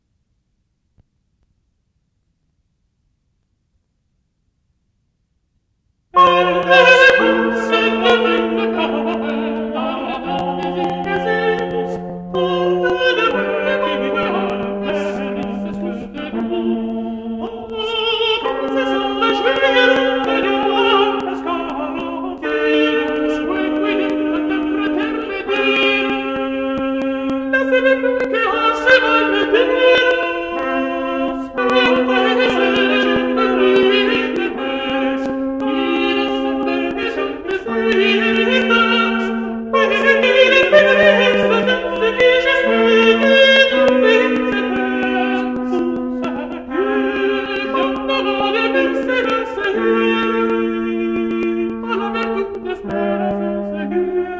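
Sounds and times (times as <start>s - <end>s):
choral motet: 6.1s - 54.3s.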